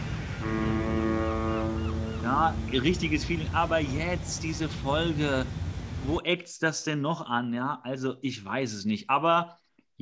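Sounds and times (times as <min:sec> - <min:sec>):
deep sustained ship's horn tone: 0:00.0 - 0:04.8
steady ocean surf: 0:00.0 - 0:06.2
speech: 0:02.3 - 0:10.0.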